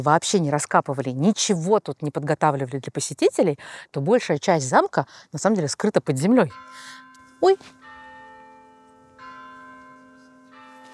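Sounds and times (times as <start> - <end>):
speech: 0.0 - 7.8
monastery church bells ringing: 6.4 - 10.9.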